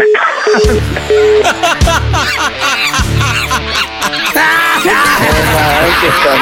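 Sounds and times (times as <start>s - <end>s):
laughter: 0.1s - 6.4s
mother sobbing and wailing loudly: 1.4s - 6.4s.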